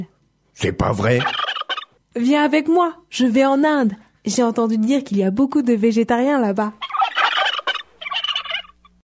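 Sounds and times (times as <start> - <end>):
speech: 0.0 - 1.4, 2.1 - 6.8
person imitating turkey gobbling: 1.1 - 1.9, 6.8 - 8.8.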